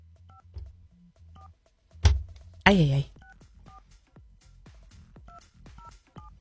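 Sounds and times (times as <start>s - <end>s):
speech: 2.7s - 3.2s
touch-tone beeps of a phone number being dialed: 5.3s - 6.3s.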